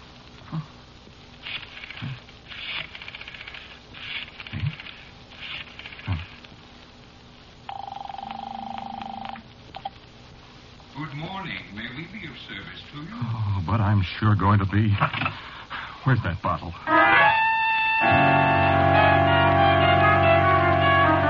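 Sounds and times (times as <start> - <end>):
speech: 0.5 - 0.8, 14.0 - 15.4, 16.0 - 17.2
steady telephone buzzing tone: 7.7 - 9.9, 17.0 - 21.2.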